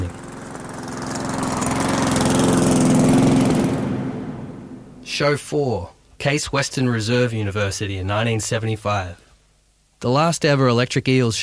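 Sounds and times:
lawnmower engine running on stage at a bar music night: 0.0s - 5.1s
speech: 5.2s - 9.2s, 10.0s - 11.4s.

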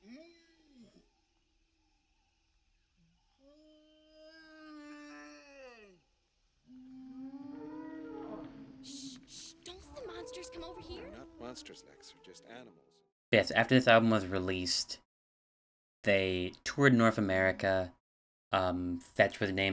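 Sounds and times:
whale calls: 6.7s - 12.7s
speech: 10.7s - 15.0s, 16.0s - 19.7s.

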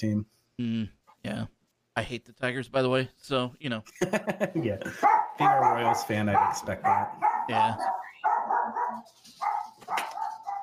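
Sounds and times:
speech: 0.0s - 8.0s, 8.7s - 10.1s
dog barking: 5.0s - 10.6s.

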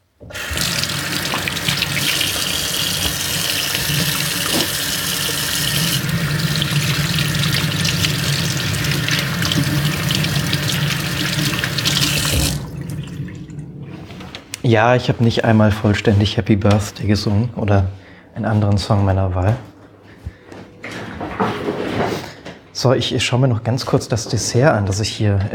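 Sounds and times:
tap water running into a sink as hands are washed: 0.2s - 13.7s
speech: 14.7s - 19.7s, 22.8s - 25.5s.

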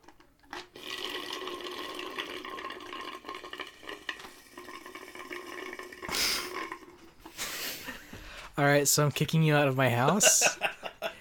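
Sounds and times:
water and ice pouring into a container: 0.4s - 7.2s
speech: 8.6s - 10.6s
laughter: 9.9s - 11.2s.

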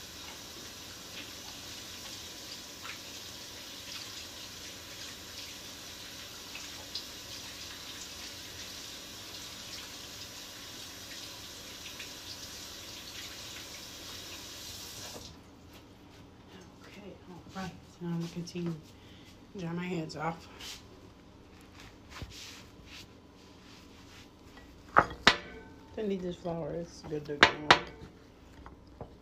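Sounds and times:
running tap water while washing hands: 0.0s - 15.5s
speech: 17.6s - 19.0s, 19.6s - 20.8s, 26.1s - 28.1s.

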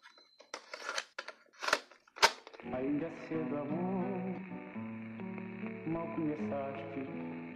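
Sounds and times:
cassette tape rattling and scraping as pushed into a tape recorder: 0.0s - 2.6s
speech: 2.6s - 4.9s, 5.8s - 7.4s.

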